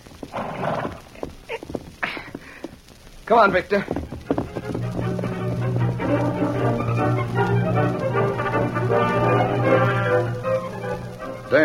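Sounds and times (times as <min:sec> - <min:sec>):
horse hooves clip-clopping as a rider leaves on horseback: 0:00.0 - 0:11.6
rough breathy burst: 0:02.0 - 0:02.8
speech: 0:03.3 - 0:04.0.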